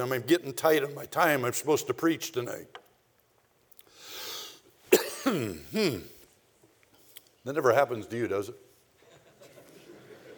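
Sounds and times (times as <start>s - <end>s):
speech: 0.0s - 2.8s, 5.3s - 6.2s, 7.4s - 8.6s
soft breath in: 3.9s - 4.7s
person coughing from a tickle in the back of the throat: 4.9s - 6.2s.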